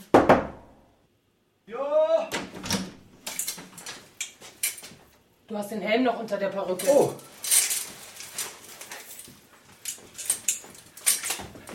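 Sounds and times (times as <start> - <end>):
knocking on a door: 0.1 - 0.7
speech: 5.5 - 7.3.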